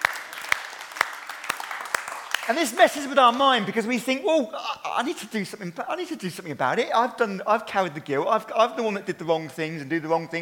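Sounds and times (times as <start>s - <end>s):
crowd cheering: 0.0s - 3.6s
speech: 2.5s - 10.4s.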